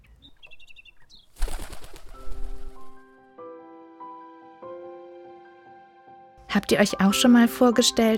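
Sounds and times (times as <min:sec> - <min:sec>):
bird chirps: 0:00.0 - 0:03.1
blackbird wings flapping: 0:01.3 - 0:03.1
speech: 0:06.5 - 0:08.1.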